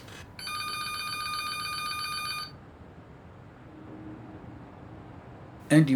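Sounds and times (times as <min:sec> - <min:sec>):
low hum: 0:00.0 - 0:05.9
office telephone ringing: 0:00.4 - 0:02.6
speech: 0:05.7 - 0:05.9.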